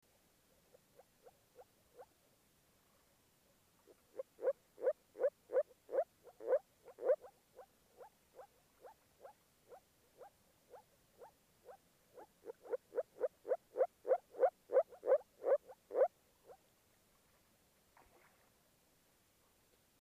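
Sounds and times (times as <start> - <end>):
moor frog calling: 3.9 - 16.1.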